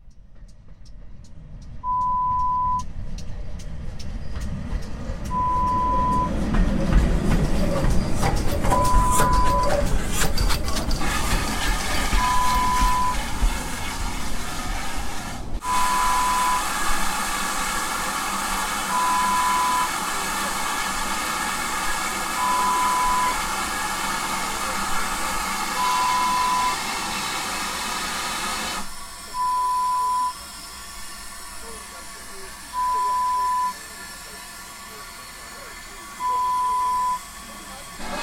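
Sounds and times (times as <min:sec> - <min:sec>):
steam train: 0:00.2 - 0:38.2.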